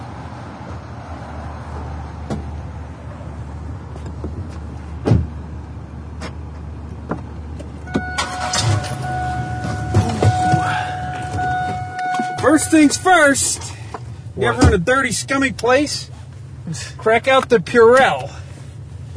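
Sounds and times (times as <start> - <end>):
car engine rumbling low and uneven with engine trouble: 0.0 - 19.1
strained car engine whine: 7.8 - 15.5
speech: 12.6 - 13.8, 14.4 - 16.1, 16.7 - 18.4.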